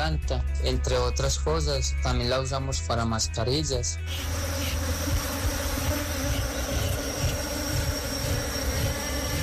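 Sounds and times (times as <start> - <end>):
speech: 0.1 - 5.2
many bees buzzing: 4.0 - 9.4.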